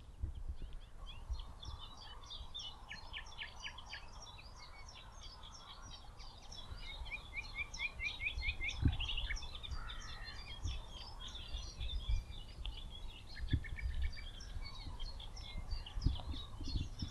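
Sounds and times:
nightingale singing: 0.3s - 17.0s.

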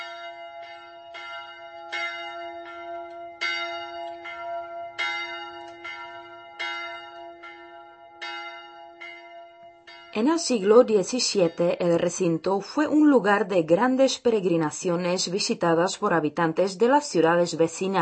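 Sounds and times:
600-year-old church bell ringing: 0.0s - 12.0s
speech: 10.2s - 18.0s.

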